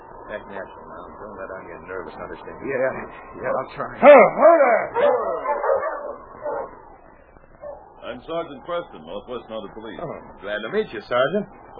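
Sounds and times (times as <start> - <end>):
speech: 0.3 - 6.3, 8.1 - 11.7
dog growling and barking: 4.1 - 6.8.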